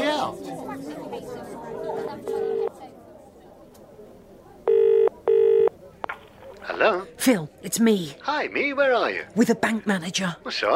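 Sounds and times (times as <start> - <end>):
faint chatter and voices: 0.0 - 10.7
telephone line ringing heard through the handset: 4.7 - 5.7
speech: 6.8 - 10.7.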